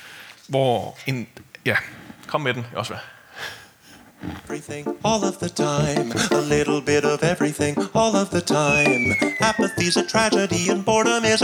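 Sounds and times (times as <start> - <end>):
speech: 0.5 - 3.6, 4.2 - 11.4
bright keyboard-driven accompaniment: 4.2 - 11.4
person singing a chorus from a comedy special: 4.5 - 11.4.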